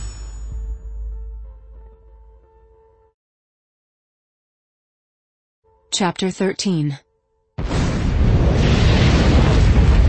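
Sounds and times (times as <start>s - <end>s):
speech: 5.9s - 7.0s
explosion with sustained rumbling roar: 7.6s - 10.0s.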